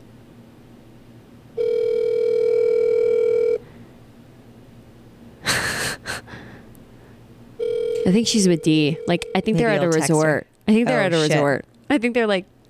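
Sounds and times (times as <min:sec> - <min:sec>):
ringback tone through a phone line from an outgoing call: 0:01.6 - 0:03.6, 0:07.6 - 0:10.0
speech: 0:08.1 - 0:12.6.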